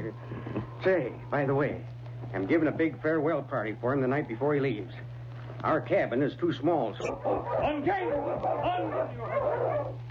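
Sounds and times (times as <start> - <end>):
speech: 0.8 - 10.0
several dogs barking and yipping: 7.0 - 10.1.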